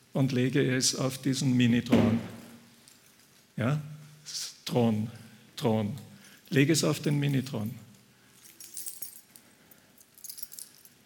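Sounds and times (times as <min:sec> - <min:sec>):
speech: 0:00.2 - 0:02.4, 0:03.6 - 0:07.8
bunch of keys jangling: 0:06.0 - 0:11.0.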